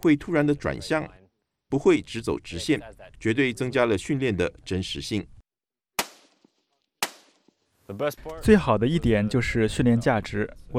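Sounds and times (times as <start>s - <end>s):
speech: 0.0s - 5.4s, 7.9s - 10.7s
gunshots during marine shooting practice at moving targets: 6.0s - 7.5s.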